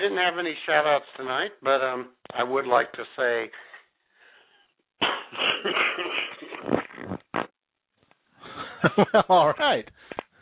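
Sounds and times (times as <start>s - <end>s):
speech: 0.2s - 3.7s, 5.0s - 6.1s, 8.8s - 10.2s
person coughing and clearing throat: 5.0s - 6.6s.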